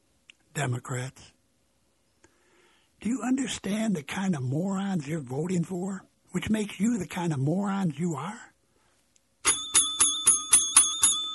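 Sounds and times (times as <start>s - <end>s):
speech: 0.6s - 1.4s, 3.0s - 8.5s
bright metallic bell ringing rapidly: 9.4s - 11.3s.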